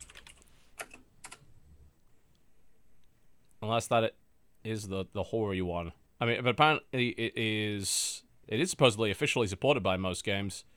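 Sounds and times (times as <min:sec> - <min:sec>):
typing on a computer keyboard: 0:00.0 - 0:01.4
speech: 0:03.6 - 0:10.7.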